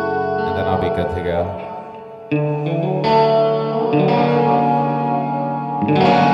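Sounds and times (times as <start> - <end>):
electric guitar through heavy effects with distortion and chorus: 0.0 - 6.3
speech: 0.6 - 4.0.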